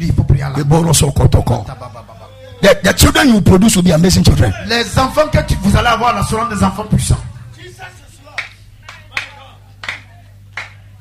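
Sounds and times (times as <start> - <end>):
speech: 0.0 - 8.0
steady low hum: 3.4 - 8.8
congregation clapping in unison during a sermon: 8.3 - 10.9.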